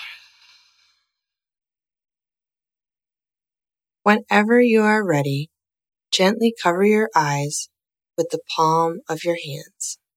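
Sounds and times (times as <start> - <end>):
slow soft breath out through the nose during a guided relaxation exercise: 0.0 - 1.0
speech: 4.0 - 5.5, 6.1 - 10.0.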